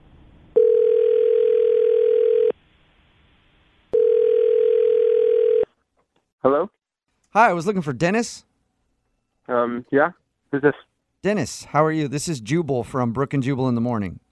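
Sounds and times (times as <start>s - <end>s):
phone call ringing tone: 0.5s - 2.5s, 3.9s - 5.7s
speech: 7.3s - 8.5s, 9.5s - 14.2s.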